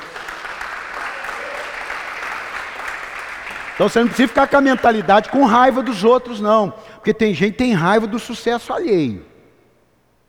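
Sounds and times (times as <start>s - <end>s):
crowd applauding: 0.0s - 6.5s
speech: 3.8s - 9.3s.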